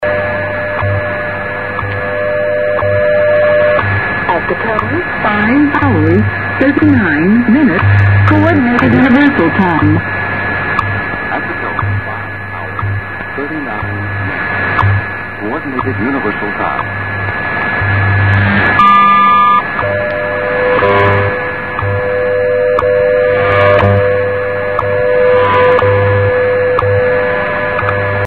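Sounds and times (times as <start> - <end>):
WWVH WWV shortwave time signal radio on 15000: 0.0 - 28.2.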